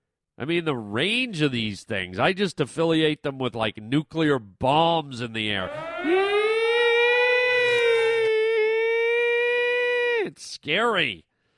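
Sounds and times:
speech: 0.4s - 6.2s, 10.3s - 11.3s
civil defense warning siren wailing: 5.6s - 10.0s.

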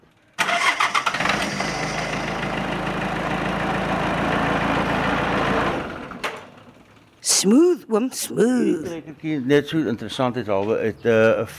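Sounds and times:
small four-cylinder turbo diesel tractor engine starting and idling: 0.0s - 7.2s
speech: 7.4s - 11.5s.

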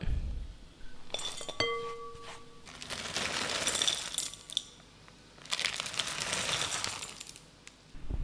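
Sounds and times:
chocolate pieces clattering into a glass bowl: 1.1s - 4.8s, 5.5s - 7.4s.

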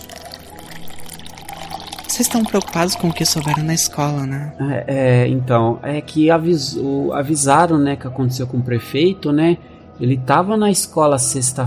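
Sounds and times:
water pouring into a glass: 0.0s - 4.1s
speech: 2.2s - 11.6s.

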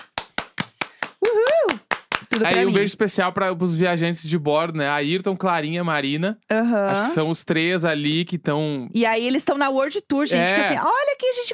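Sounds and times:
person clapping hands in a steady rhythm: 0.0s - 2.9s
speech: 2.4s - 11.5s.

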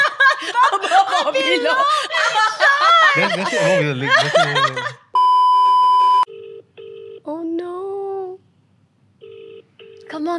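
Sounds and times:
laughter: 0.0s - 5.1s
speech: 0.7s - 5.0s
faint beep: 5.2s - 6.3s
phone line ringing tone on an outgoing call: 5.2s - 7.2s, 9.2s - 10.2s.

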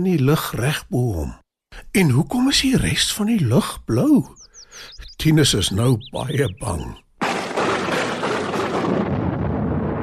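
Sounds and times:
speech: 0.0s - 7.0s
loud thunderclap: 7.2s - 10.0s.

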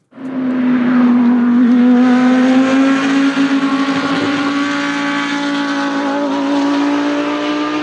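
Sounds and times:
Lamborghini Huracan GT3 race car engine roaring: 0.0s - 7.8s.

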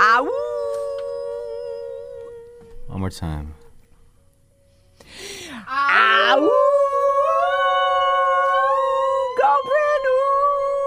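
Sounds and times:
dog howling: 0.0s - 3.0s, 5.7s - 10.8s
speech: 3.0s - 3.6s.

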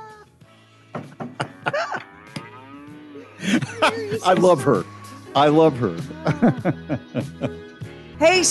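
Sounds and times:
sharp knocks and thumps: 0.9s - 1.6s
laughter: 1.3s - 2.1s, 3.4s - 4.6s, 6.1s - 7.7s
cow mooing in low drawn-out calls: 1.6s - 3.4s
speech: 3.5s - 8.4s.

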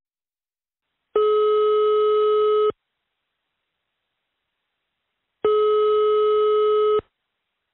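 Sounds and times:
telephone ringback tone while placing a call: 1.2s - 2.7s, 5.4s - 7.0s.

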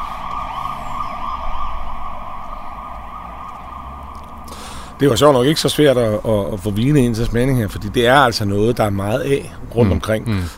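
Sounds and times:
ambulance siren wailing: 0.0s - 6.7s
rumbling traffic: 0.0s - 10.5s
speech: 5.0s - 10.5s.

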